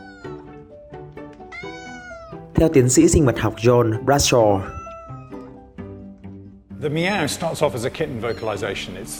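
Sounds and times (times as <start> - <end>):
cat meowing: 0.0 - 0.7, 1.4 - 2.6, 4.2 - 5.7
speech: 2.6 - 4.8, 6.8 - 9.1.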